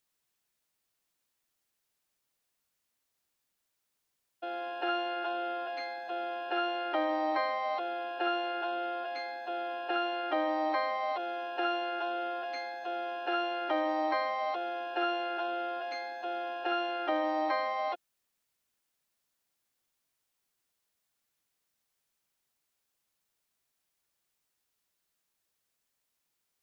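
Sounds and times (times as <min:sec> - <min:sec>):
piano melody loop in F minor: 0:04.5 - 0:18.0.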